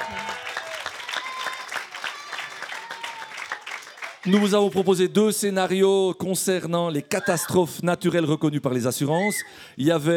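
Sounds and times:
applause from a small crowd for a correct quiz answer: 0.0 - 5.1
speech: 4.2 - 10.1.

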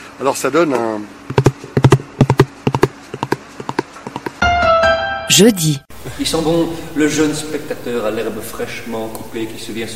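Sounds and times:
speech: 0.2 - 1.3, 5.4 - 9.9
horse hooves clip-clopping as the horse runs off, calabash foley: 1.3 - 4.4.

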